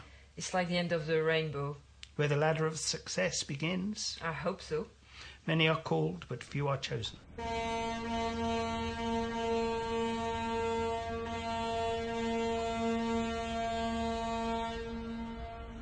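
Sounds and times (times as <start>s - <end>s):
speech: 0.4s - 8.6s
foghorn blowing: 7.2s - 15.7s.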